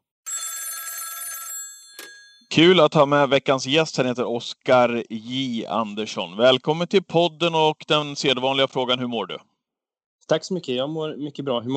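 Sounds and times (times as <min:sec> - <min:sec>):
telephone bell ringing as a call is placed: 0:00.2 - 0:02.5
speech: 0:02.5 - 0:09.5, 0:10.3 - 0:11.7.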